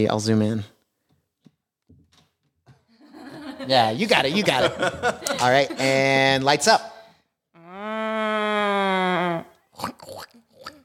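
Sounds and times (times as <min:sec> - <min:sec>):
speech: 0:00.0 - 0:00.7, 0:03.7 - 0:06.9
laughter: 0:03.0 - 0:06.3
woman imitating a cow moo in a sound-guessing game: 0:07.6 - 0:09.6
short vocal bursts: 0:07.6 - 0:10.8.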